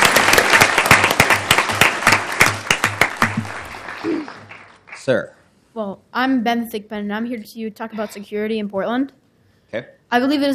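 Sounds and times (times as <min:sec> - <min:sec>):
audience applause in a room: 0:00.0 - 0:05.2
speech: 0:05.1 - 0:10.5.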